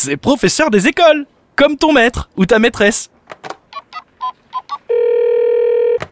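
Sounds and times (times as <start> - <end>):
speech: 0.0 - 3.6
long steady telephone ringing tone on an outgoing call: 4.9 - 6.1.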